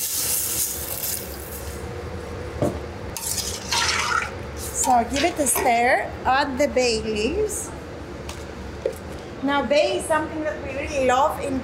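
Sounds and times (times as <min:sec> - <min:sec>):
water pouring into a cooking pot: 0:03.2 - 0:04.4
speech: 0:04.8 - 0:07.8, 0:09.4 - 0:11.6.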